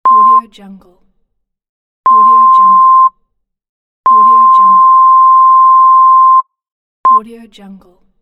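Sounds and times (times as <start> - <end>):
censorship beep: 0.1 - 0.5, 2.1 - 3.1, 4.1 - 6.4, 7.1 - 7.3.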